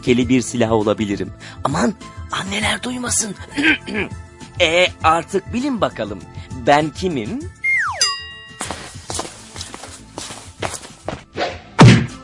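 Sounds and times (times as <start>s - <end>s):
speech: 0.0s - 7.6s
slipper smacks: 8.6s - 12.1s.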